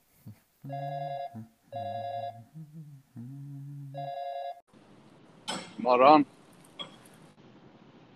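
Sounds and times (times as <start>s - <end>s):
speech: 0.6s - 2.0s, 5.8s - 6.4s
phone ringback tone: 0.7s - 2.4s, 4.0s - 4.6s.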